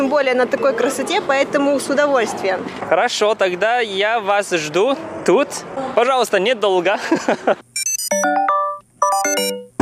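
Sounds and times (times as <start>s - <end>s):
speech: 0.1s - 8.2s
laughter: 7.0s - 7.6s
electronic melody of chiming tones: 7.8s - 9.7s.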